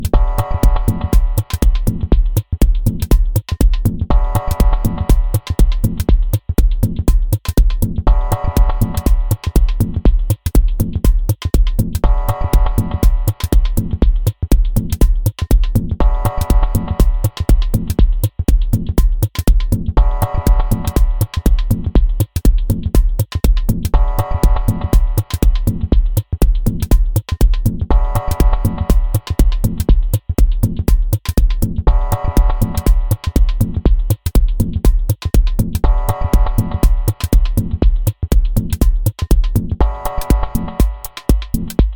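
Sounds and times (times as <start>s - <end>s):
dub music: 0.0s - 41.9s.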